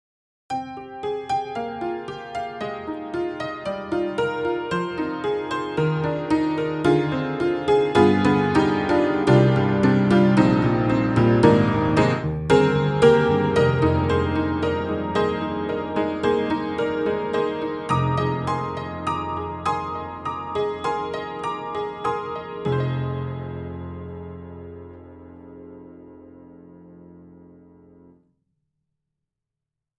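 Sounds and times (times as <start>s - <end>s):
creaky old barroom upright piano: 0.5s - 28.1s.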